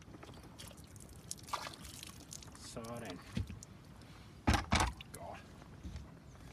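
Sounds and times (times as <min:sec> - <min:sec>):
water splashing and trickling out of a plankton net: 0:00.0 - 0:04.2
water dripping from a plankton net: 0:00.6 - 0:03.8
speech: 0:02.8 - 0:03.5.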